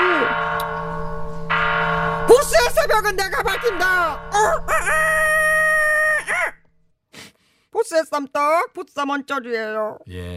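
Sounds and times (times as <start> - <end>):
bell ringing with a long sustained tone: 0.0 - 4.9
brighter shimmer of higher ringing: 0.0 - 6.8
speech: 2.9 - 5.4, 7.8 - 10.3.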